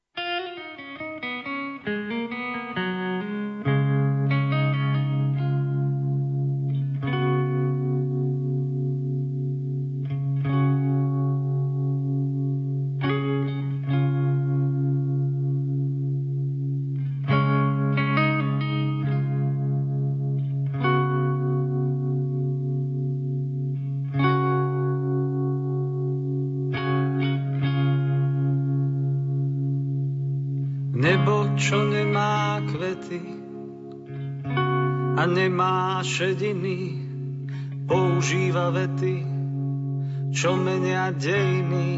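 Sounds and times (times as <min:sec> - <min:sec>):
sustained effects-laden electric guitar chords: 0:00.0 - 0:41.9
speech: 0:35.3 - 0:37.0, 0:38.2 - 0:39.3, 0:40.4 - 0:41.9.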